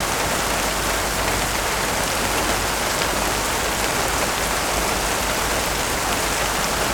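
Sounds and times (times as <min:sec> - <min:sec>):
rain: 0:00.0 - 0:06.9.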